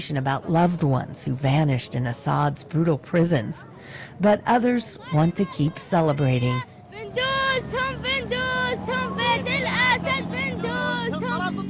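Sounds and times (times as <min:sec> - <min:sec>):
speech: 0:00.0 - 0:10.3
constant low rumble of engines outdoors: 0:00.0 - 0:11.6
outdoor street crowd noise: 0:00.0 - 0:11.6
young boy singing a rhythmic chant-like protest song outdoors: 0:04.6 - 0:11.6.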